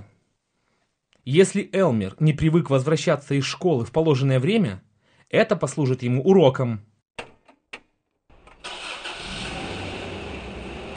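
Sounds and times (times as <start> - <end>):
speech: 1.3 - 6.9
car engine cranking: 8.4 - 10.9.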